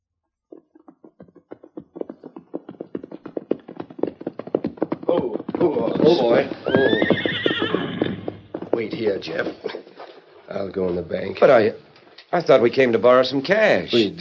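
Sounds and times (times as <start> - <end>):
horses' hooves clip-clopping as riders arrive at a bank: 0.1 - 11.6
horse whinnying: 5.0 - 8.6
speech: 5.2 - 7.1, 8.8 - 9.8, 10.5 - 14.1.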